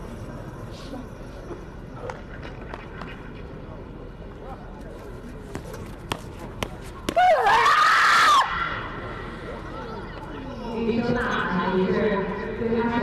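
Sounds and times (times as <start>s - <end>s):
crowd noise at a throwing event: 0.0s - 13.0s
athlete yelling during a final throw at a throwing event: 7.1s - 8.9s.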